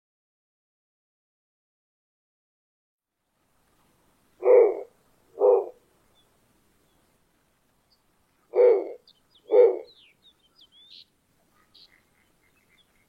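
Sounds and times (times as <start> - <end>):
captive snowy owl uttering gruff barking notes at a zoo in Pessac, France: 4.4 - 5.8, 8.5 - 10.0.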